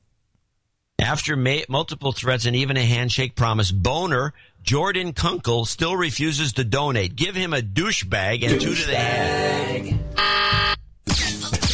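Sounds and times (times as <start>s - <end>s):
speech: 1.0s - 10.6s
loud harsh game-show buzzer: 10.2s - 10.8s.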